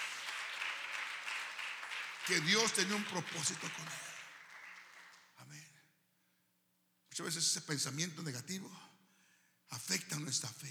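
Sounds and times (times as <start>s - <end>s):
audience applauding: 0.0s - 5.4s
speech: 2.3s - 4.1s, 7.2s - 8.9s, 9.7s - 10.6s.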